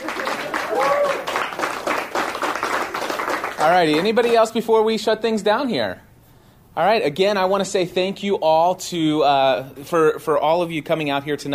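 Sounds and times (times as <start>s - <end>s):
people cheering: 0.0s - 4.1s
audience applause: 0.0s - 4.4s
speech: 3.6s - 6.1s, 6.8s - 11.5s.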